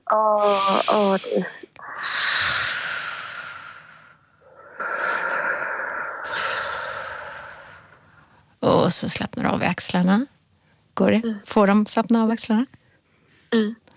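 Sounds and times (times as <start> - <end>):
speech: 0.1 - 2.4, 9.0 - 10.4, 11.0 - 12.8, 13.5 - 13.9
slow prolonged airy exhalation: 0.4 - 8.3.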